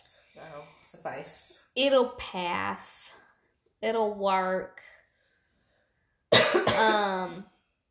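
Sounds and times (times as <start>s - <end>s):
speech: 0.6s - 3.2s, 3.8s - 4.9s, 6.8s - 7.5s
dry cough dragging into raspy throat sound: 6.3s - 7.2s.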